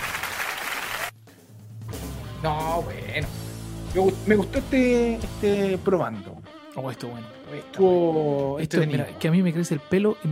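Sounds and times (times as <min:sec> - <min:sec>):
dense applause of many hands clapping: 0:00.0 - 0:01.2
speech: 0:02.4 - 0:10.3.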